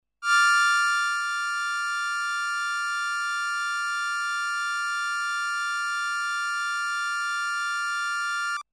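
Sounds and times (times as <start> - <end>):
drone: 0.3 - 8.6.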